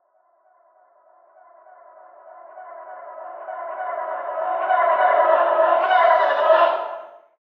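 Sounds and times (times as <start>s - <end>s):
horror music: 1.7s - 7.2s.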